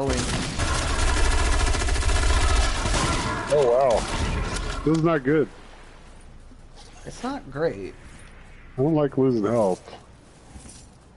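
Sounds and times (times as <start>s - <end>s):
speech: 0.0s - 0.5s, 3.5s - 5.6s, 7.0s - 8.0s, 8.8s - 10.0s
gunfire in a Halloween-themed shooter video game: 0.0s - 4.9s.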